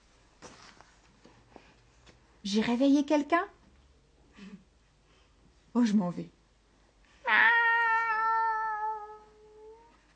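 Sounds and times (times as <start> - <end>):
speech: 2.4 - 3.6, 5.8 - 6.4
cat meowing: 7.2 - 10.0.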